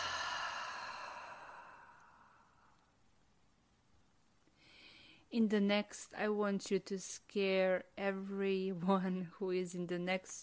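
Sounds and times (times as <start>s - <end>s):
slow soft exhale during box-breathing meditation: 0.0s - 2.9s
speech: 5.3s - 10.4s.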